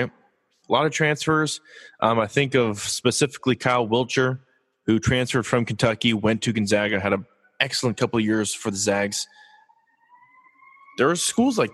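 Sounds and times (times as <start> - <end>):
speech: 0.0 - 9.4, 11.0 - 11.7
faint siren wailing: 7.7 - 11.7.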